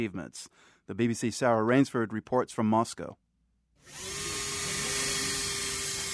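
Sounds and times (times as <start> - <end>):
speech: 0.0 - 3.2, 3.8 - 4.2
power drill whirring, fixing metal plaque: 3.8 - 6.1.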